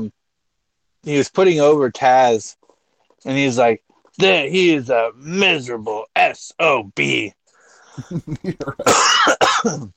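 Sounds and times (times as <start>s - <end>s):
speech: 1.0s - 2.6s, 3.2s - 7.4s, 8.0s - 9.9s
loud harsh coughs: 8.8s - 9.9s
throat-clearing grunts from a person with a sore throat: 8.8s - 9.9s.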